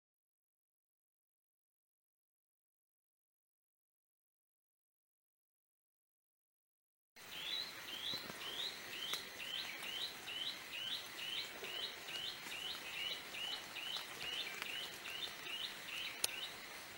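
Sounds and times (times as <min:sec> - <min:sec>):
clear-throated antbird singing: 0:07.2 - 0:16.8.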